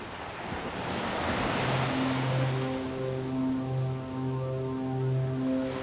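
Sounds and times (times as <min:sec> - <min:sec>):
ocean sounds: 0:00.4 - 0:05.8
healing music: 0:00.8 - 0:05.8.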